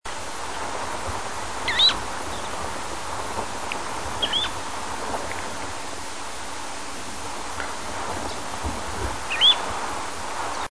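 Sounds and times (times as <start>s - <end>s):
soft hissing background: 0.1s - 10.6s
semipalmated plover calling with upslurred whistles: 1.6s - 2.6s, 4.1s - 4.6s, 9.3s - 9.7s.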